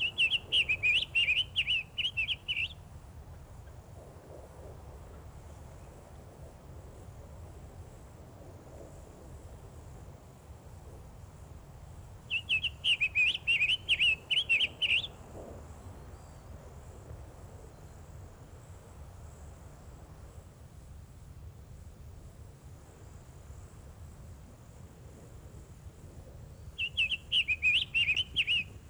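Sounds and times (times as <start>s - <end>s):
summer tanager singing warbled phrases: 0.0s - 2.8s, 12.3s - 15.1s, 26.8s - 28.8s
faint thin insect hum: 0.0s - 28.8s.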